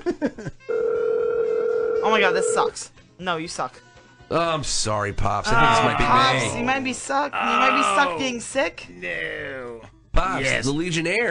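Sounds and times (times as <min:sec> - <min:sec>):
electronic telephone ring tone of an unanswered call to urgent care: 0:00.7 - 0:02.7
speech: 0:02.1 - 0:09.6, 0:10.2 - 0:11.2.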